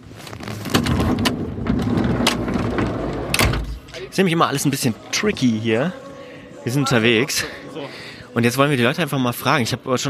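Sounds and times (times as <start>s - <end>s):
steady rumbling noise: 0.2s - 4.1s
old VW T2 bus sliding door being opened with metallic clunks and rattles: 0.7s - 3.9s
speech: 4.2s - 6.0s, 6.6s - 10.0s.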